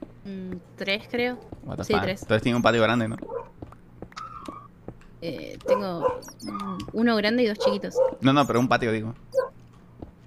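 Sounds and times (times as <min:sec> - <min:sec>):
speech: 0:00.2 - 0:03.3, 0:05.2 - 0:09.4
faint dogs barking: 0:01.3 - 0:03.6, 0:05.6 - 0:06.6, 0:07.5 - 0:08.7, 0:09.3 - 0:09.6.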